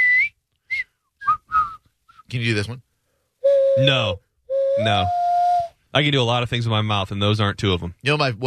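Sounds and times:
person whistling through teeth: 0.0 - 2.3, 3.4 - 5.8
speech: 2.3 - 2.9, 3.8 - 4.2, 4.8 - 5.2, 6.0 - 8.4.

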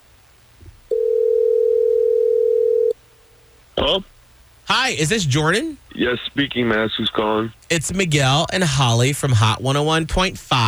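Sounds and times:
phone ringing tone: 0.9 - 3.0
voice picking up on phone: 4.7 - 10.6
speech: 4.9 - 10.6.

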